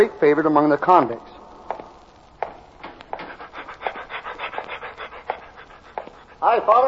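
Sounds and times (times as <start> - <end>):
speech: 0.0 - 1.3, 6.5 - 6.8
dog panting: 3.2 - 6.8.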